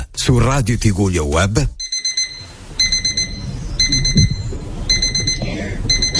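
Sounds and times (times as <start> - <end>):
speech: 0.2 - 1.8
electronic alarm clock beeping: 1.8 - 6.1
steady low rumble: 2.5 - 6.1.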